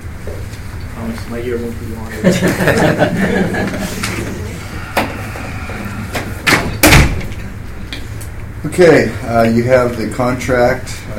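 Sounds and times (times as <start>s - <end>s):
speech: 1.1s - 4.2s, 8.8s - 11.1s
laughter: 2.1s - 5.5s
murmur of voices at a board meeting: 3.0s - 6.5s
door swinging shut: 6.2s - 7.4s.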